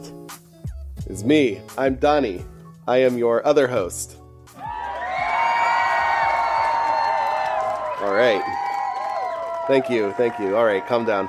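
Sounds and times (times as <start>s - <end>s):
speech: 1.1s - 4.2s, 8.0s - 8.6s, 9.7s - 11.2s
crowd cheering and whooping with shouts: 4.6s - 11.2s.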